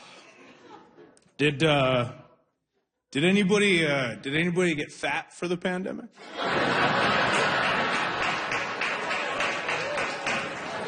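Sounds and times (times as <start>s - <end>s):
laughter: 0.0s - 1.4s, 6.2s - 10.8s
speech: 1.4s - 2.2s, 3.1s - 7.6s
audience clapping: 6.4s - 10.8s.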